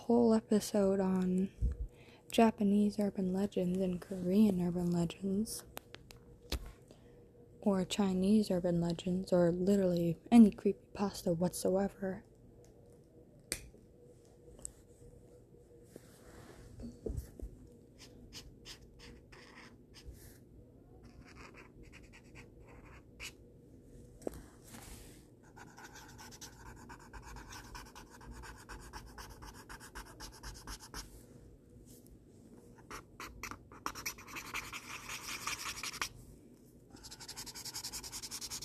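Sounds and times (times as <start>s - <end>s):
speech: 0.1s - 5.7s, 7.6s - 12.3s
pencil drawing on paper: 18.0s - 20.1s, 21.0s - 23.4s, 25.4s - 31.1s, 32.8s - 36.1s, 37.0s - 38.6s.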